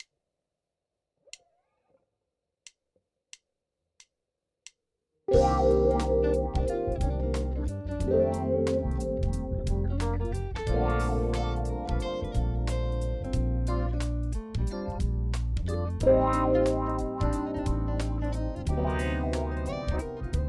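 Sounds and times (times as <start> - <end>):
wah guitar playing slow triplets for smooth jazz: 5.3 - 14.9, 16.0 - 20.4.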